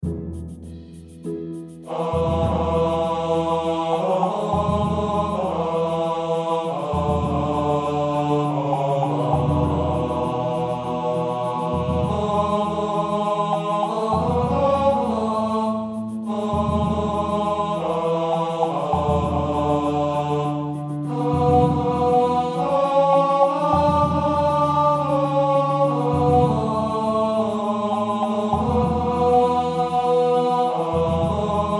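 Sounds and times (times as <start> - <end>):
tenor voice singing: 1.8 - 31.7.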